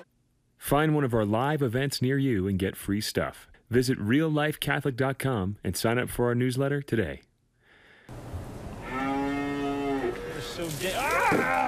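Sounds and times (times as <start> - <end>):
speech: 0.0 - 7.3, 10.6 - 11.6
cow mooing: 8.7 - 10.8.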